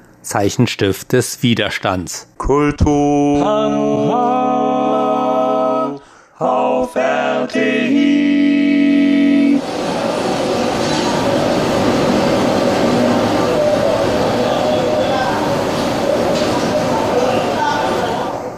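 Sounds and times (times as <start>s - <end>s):
speech: 0.2s - 5.2s, 5.9s - 8.6s
agitated protest crowd shouting: 9.6s - 18.5s
screams from a protest crowd: 9.6s - 18.5s.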